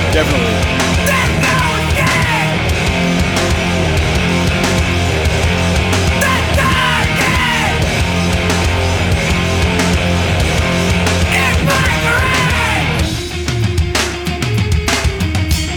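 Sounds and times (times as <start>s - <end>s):
distorted guitars: 0.0s - 15.7s
loud dense rock track: 0.0s - 15.7s
shouted vocal: 0.9s - 2.7s, 6.1s - 8.0s, 11.3s - 13.1s.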